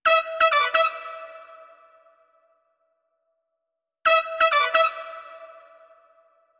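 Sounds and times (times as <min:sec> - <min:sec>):
brass with large hall reverb: 0:00.0 - 0:02.5, 0:04.0 - 0:06.4.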